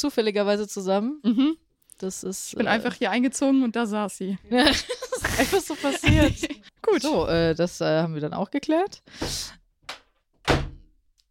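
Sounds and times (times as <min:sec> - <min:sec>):
speech: 0:00.0 - 0:09.6
laughter: 0:04.5 - 0:06.7
door thudding but not latching shut: 0:10.4 - 0:10.9.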